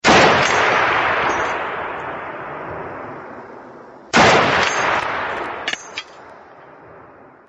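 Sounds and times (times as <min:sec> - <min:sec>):
sniper rifle gunshot: 0:00.0 - 0:02.6, 0:04.1 - 0:06.0.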